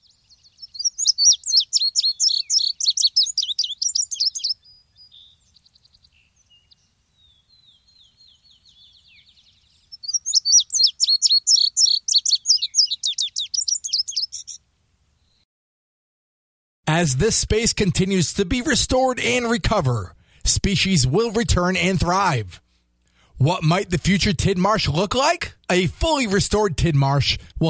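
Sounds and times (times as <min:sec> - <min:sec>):
indigo bunting singing high rapid sweet chirping notes in a restored wetland: 0:00.0 - 0:14.6
speech: 0:17.0 - 0:22.6, 0:23.4 - 0:27.6.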